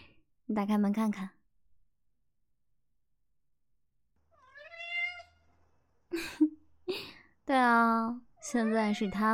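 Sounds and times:
speech: 0.5s - 1.4s, 7.5s - 9.3s
large Maine Coon cat meowing: 4.3s - 5.5s, 8.4s - 9.3s.

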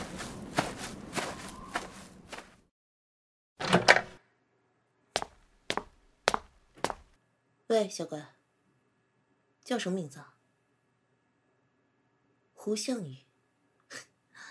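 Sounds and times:
footsteps of people walking away: 0.0s - 2.6s, 5.2s - 7.2s
speech: 7.7s - 8.4s, 9.7s - 10.3s, 12.6s - 13.2s.

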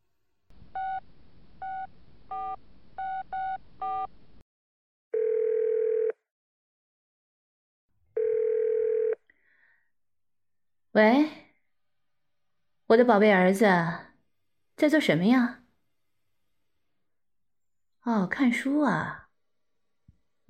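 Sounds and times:
long steady telephone ringing tones during a call: 5.1s - 6.2s, 8.2s - 9.2s
speech: 11.0s - 11.3s, 12.9s - 14.1s, 14.8s - 15.6s, 18.0s - 19.2s.

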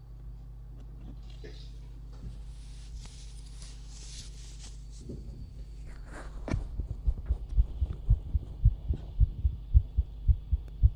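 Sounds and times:
faint hum: 0.0s - 10.9s
young woman's fast heartbeat: 6.3s - 10.9s.

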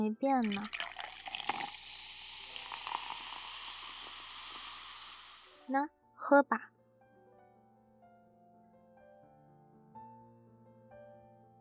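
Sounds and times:
speech: 0.0s - 0.9s, 5.7s - 6.8s
small clinks: 0.4s - 5.6s
iced sparkling water fizzing while poured: 0.4s - 5.8s.

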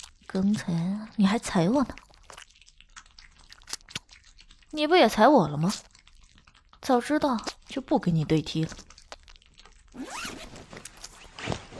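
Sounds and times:
speech: 0.3s - 2.1s, 4.7s - 5.9s, 6.9s - 8.9s
zippers on black leather boot shafts being pulled open: 10.0s - 11.7s.

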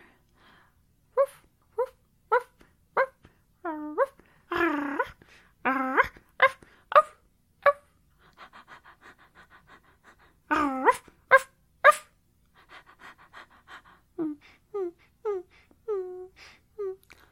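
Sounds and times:
woman imitating dog barks: 1.2s - 7.9s, 10.5s - 12.2s
woman's quiet panting breaths imitating a dog: 8.1s - 10.5s, 12.5s - 15.8s.

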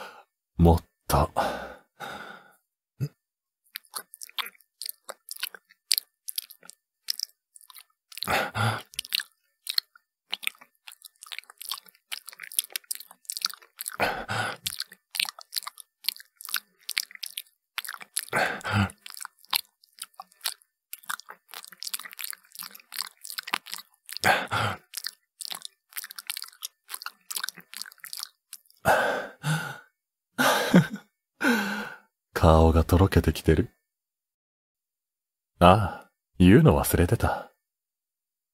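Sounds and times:
loud breathy sighs: 0.0s - 0.3s, 1.4s - 2.6s, 8.3s - 8.9s, 14.0s - 14.7s, 18.4s - 19.0s, 24.2s - 24.8s, 28.9s - 32.1s
speech: 0.6s - 1.4s, 32.5s - 33.8s, 35.6s - 35.8s, 36.5s - 37.5s
wet chewing and crunchy bites of something fresh: 3.7s - 28.9s.

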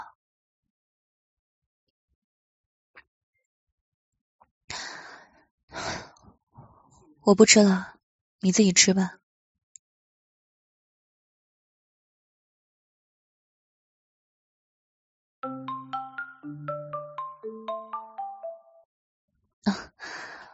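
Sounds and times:
speech: 7.2s - 9.2s
phone ringtone of bright electronic notes: 15.4s - 18.9s.

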